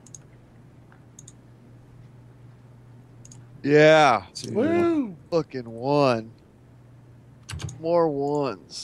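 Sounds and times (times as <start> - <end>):
computer mouse clicks on a computer dice roller: 0.0 - 0.3, 1.2 - 1.4, 3.2 - 3.4, 7.4 - 8.4
steady low electrical hum: 0.0 - 8.8
speech: 3.6 - 6.4, 7.8 - 8.8.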